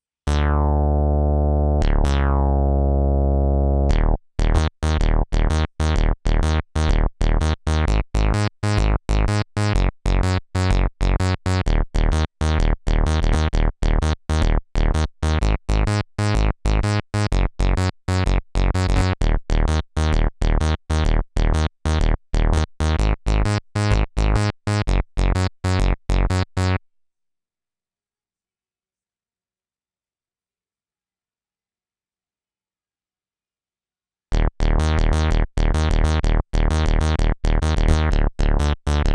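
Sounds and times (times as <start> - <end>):
Juno synth bass: 0.3 - 26.8, 34.3 - 39.1.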